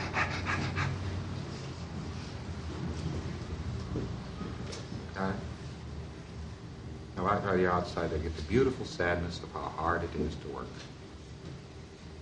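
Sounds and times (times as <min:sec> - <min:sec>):
heavy panting after exertion: 0:00.0 - 0:01.5
noisy rumbling background: 0:00.0 - 0:12.2
speech: 0:07.4 - 0:11.0.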